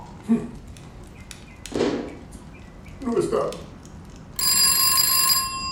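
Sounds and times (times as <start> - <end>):
speech: 0.3 - 0.5, 3.2 - 3.6
landline telephone ringing: 4.4 - 5.6.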